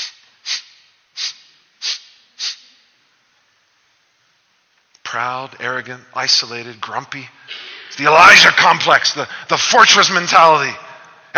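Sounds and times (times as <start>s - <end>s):
person making exaggerated sniffs: 0.0s - 2.8s
speech: 5.1s - 11.3s.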